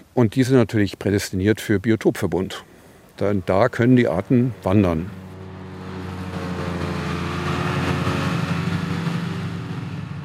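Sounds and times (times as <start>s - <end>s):
speech: 0.2s - 5.2s
large tractor engine droning while mowing meadow: 2.6s - 10.2s
modern mower whirring while harvesting hay: 3.1s - 10.2s.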